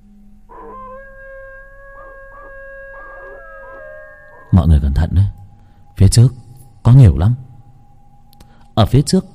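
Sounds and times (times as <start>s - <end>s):
dog howling in a forest at night: 0.5s - 5.5s
speech: 4.6s - 5.4s, 6.0s - 7.4s, 8.8s - 9.3s.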